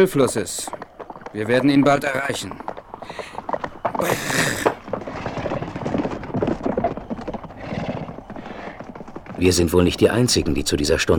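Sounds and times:
speech: 0.0s - 3.4s, 4.0s - 4.5s, 9.4s - 11.1s
hoofbeats of horses ridden through thick fog near a river: 0.0s - 11.1s
loud high horse whinny: 1.6s - 9.4s.

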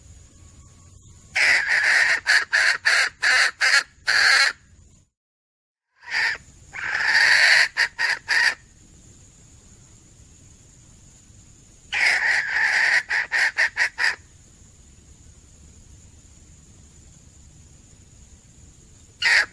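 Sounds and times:
female junglefowl clucking and rasping as a lure call: 1.4s - 4.6s, 6.0s - 8.7s, 11.9s - 14.2s, 19.2s - 19.5s.

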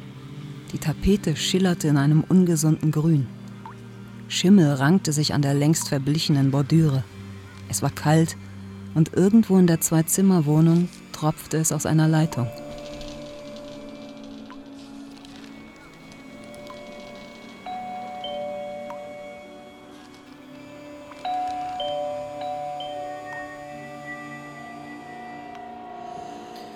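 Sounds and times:
speech: 0.7s - 3.4s, 4.3s - 7.1s, 7.7s - 8.4s, 9.0s - 12.6s
steady hiss: 8.4s - 26.7s
doorbell ringing in a cold damp two-room flat: 12.2s - 14.8s, 16.0s - 26.7s.

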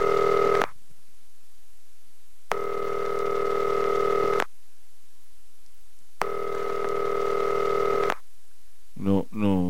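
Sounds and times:
ringback tone of an international telephone call: 0.0s - 0.6s, 2.5s - 4.5s, 6.2s - 8.1s.

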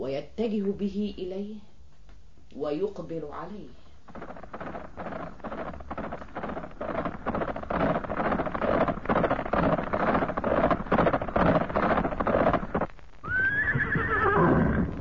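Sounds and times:
speech: 0.0s - 1.7s, 2.5s - 4.8s
horse with a rider galloping: 3.9s - 15.0s.

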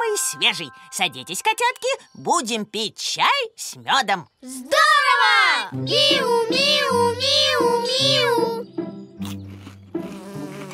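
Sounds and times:
speech: 0.3s - 9.4s
bee buzzing around a pot of honey: 9.9s - 10.7s.

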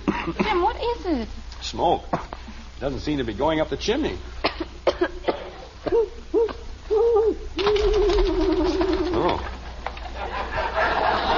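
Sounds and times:
speech: 0.2s - 4.7s
owl hooting in low wavering calls: 5.8s - 9.6s
laughter: 7.1s - 11.3s.

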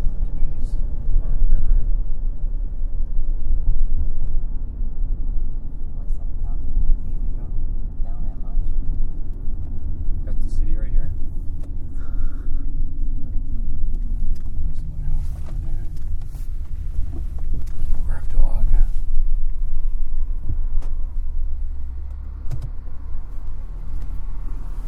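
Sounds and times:
road rumble of cars approaching: 0.0s - 24.8s.

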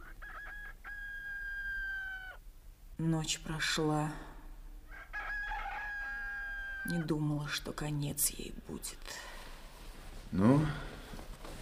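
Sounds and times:
rooster crowing: 0.0s - 2.4s, 4.9s - 7.0s
speech: 3.0s - 4.3s, 6.9s - 9.4s, 10.3s - 10.9s.

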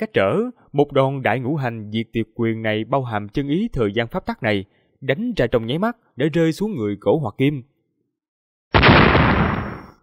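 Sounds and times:
speech: 0.0s - 7.7s
explosion sound effect: 8.8s - 10.0s.

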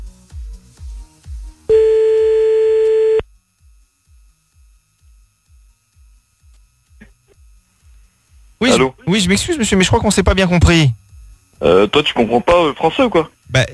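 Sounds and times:
telephone ringback tone while a line is being called back: 1.7s - 3.2s
speech: 8.6s - 11.0s, 11.6s - 13.7s.

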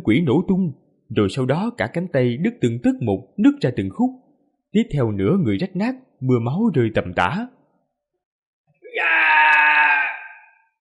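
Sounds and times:
speech: 0.1s - 7.6s
man screaming in agony: 8.9s - 10.6s.

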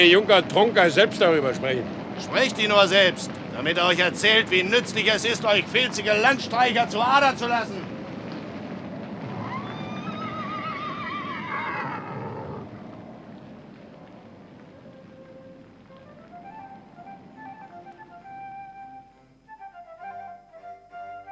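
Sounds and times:
speech: 0.0s - 7.9s
horse neighing with a high quavering whinny: 9.2s - 12.8s.

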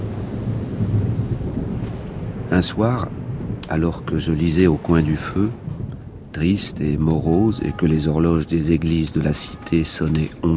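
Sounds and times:
dense steady rain on a stormy London night: 0.0s - 10.5s
low continuous thunder rumble on a stormy London night: 0.0s - 10.5s
speech: 2.5s - 5.6s, 6.3s - 10.5s.

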